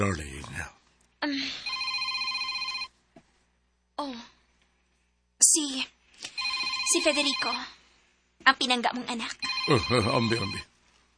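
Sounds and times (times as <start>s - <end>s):
speech: 0.0s - 0.4s, 7.0s - 7.8s, 8.4s - 10.7s
cellphone ringing: 1.6s - 2.9s, 6.3s - 7.7s, 9.4s - 10.7s.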